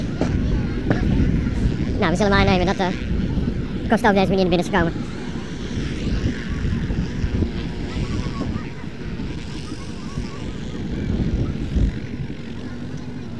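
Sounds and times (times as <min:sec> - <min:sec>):
helicopter engine and rotor roaring: 0:00.0 - 0:13.3
speech: 0:02.0 - 0:03.2, 0:03.9 - 0:05.2.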